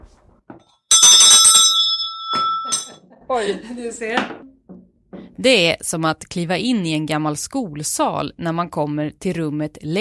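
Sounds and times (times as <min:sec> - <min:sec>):
old school desk hand bell ringing: 0:00.9 - 0:03.0
speech: 0:03.3 - 0:04.5, 0:05.4 - 0:09.9.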